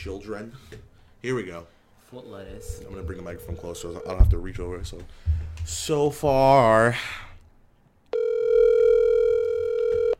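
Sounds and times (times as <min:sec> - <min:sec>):
speech: 0:00.0 - 0:07.3
faint hum: 0:00.0 - 0:10.1
electronic phone ringback tone: 0:02.5 - 0:04.2, 0:08.1 - 0:10.1.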